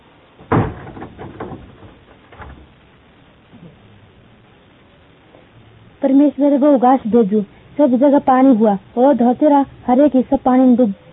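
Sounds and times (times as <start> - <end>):
knocks and rattles: 0.3 - 2.8
door shutting with a thud: 0.4 - 2.7
speech: 6.0 - 11.0.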